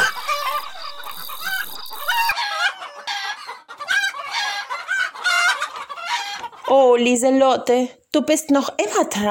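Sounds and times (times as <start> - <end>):
chickens clucking and squawking: 0.0 - 6.8
speech: 6.7 - 9.3.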